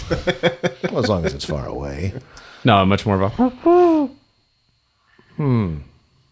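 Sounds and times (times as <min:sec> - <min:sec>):
laughter: 0:00.0 - 0:02.2
speech: 0:00.1 - 0:04.2, 0:05.4 - 0:05.9
person imitating a big owl hooting with their voice: 0:03.4 - 0:04.2.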